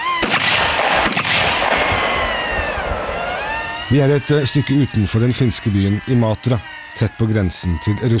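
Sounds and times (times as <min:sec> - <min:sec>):
gunshots at reservist soldiers' morning shooting practice near Imatra Finland: 0:00.0 - 0:04.2
steady high-pitched whine: 0:00.0 - 0:08.1
sustained rumbling echoes of gunshots: 0:00.2 - 0:06.2
speech: 0:03.9 - 0:08.1.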